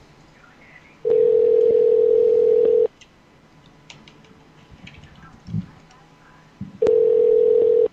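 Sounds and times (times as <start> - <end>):
outgoing telephone call ringback tone: 1.1 - 2.9, 6.8 - 7.9.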